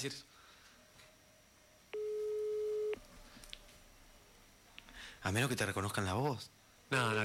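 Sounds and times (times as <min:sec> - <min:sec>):
speech: 0:00.0 - 0:00.4, 0:05.2 - 0:07.2
electronic phone ringing tone: 0:02.0 - 0:03.0.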